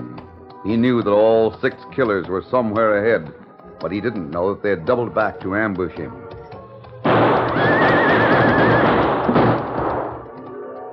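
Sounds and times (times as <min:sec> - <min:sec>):
horse hooves clattering: 0:00.0 - 0:10.6
speech: 0:00.6 - 0:06.2
horse whinnying: 0:07.2 - 0:09.6.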